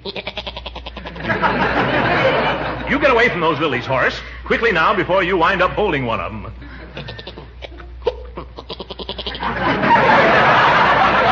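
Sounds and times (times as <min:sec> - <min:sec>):
goat bleating in a quavering stutter: 0:00.0 - 0:01.3, 0:07.0 - 0:09.4
laughter: 0:01.0 - 0:03.6, 0:05.5 - 0:08.3, 0:09.2 - 0:11.3
speech: 0:03.1 - 0:06.7.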